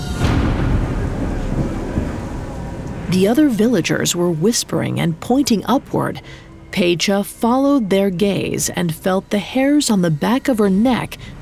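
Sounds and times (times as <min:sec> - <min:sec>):
thunder from an approaching storm: 0:00.0 - 0:06.2
speech: 0:03.1 - 0:11.4.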